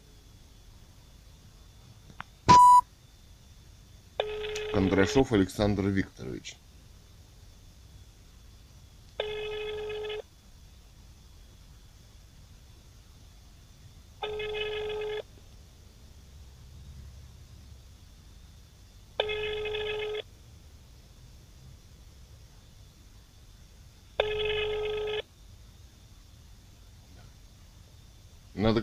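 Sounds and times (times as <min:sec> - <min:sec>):
faint hiss: 0:00.0 - 0:28.8
phone ringback tone on an outgoing call: 0:02.5 - 0:02.8, 0:04.2 - 0:05.2, 0:09.2 - 0:10.2, 0:14.2 - 0:15.3, 0:19.2 - 0:20.3, 0:24.2 - 0:25.3
speech: 0:04.8 - 0:06.6.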